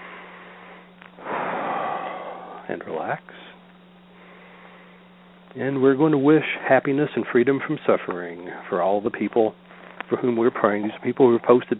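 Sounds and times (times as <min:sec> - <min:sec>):
deep breath drawn in: 0:00.0 - 0:02.7
faint low hum: 0:00.0 - 0:11.7
speech: 0:02.7 - 0:03.5, 0:05.5 - 0:11.7.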